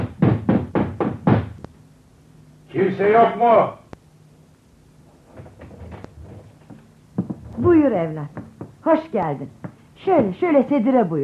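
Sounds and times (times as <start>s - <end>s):
knocking on a wooden door: 0.0s - 1.6s, 6.6s - 8.9s
speech: 2.9s - 3.8s, 7.6s - 11.2s.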